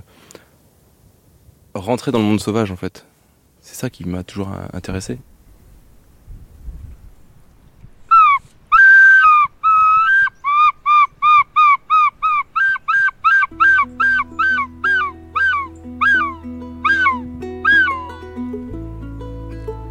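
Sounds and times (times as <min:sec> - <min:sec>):
speech: 0:01.8 - 0:05.3
person mimicking bird calls with nasal whistled notes: 0:08.2 - 0:18.1.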